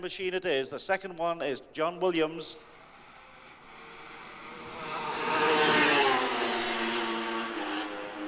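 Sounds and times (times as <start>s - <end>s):
speech: 0.0s - 2.7s
racing machine engine roaring past flat out: 2.7s - 8.2s.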